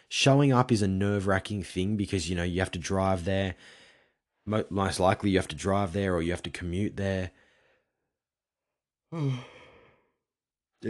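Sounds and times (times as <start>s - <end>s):
speech: 0.1s - 3.8s, 4.5s - 7.4s, 9.1s - 9.6s
person yawning: 9.1s - 9.8s.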